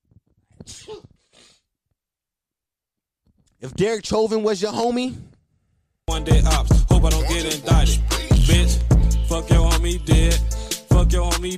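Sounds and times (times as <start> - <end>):
person sneezing: 0.6 - 1.6
speech: 3.6 - 5.3, 6.1 - 11.5.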